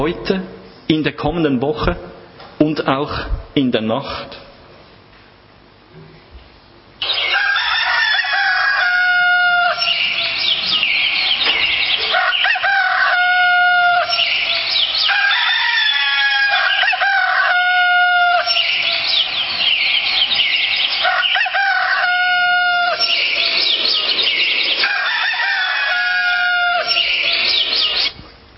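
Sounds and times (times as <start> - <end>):
speech: 0.0 - 4.4
rooster crowing: 7.0 - 27.7.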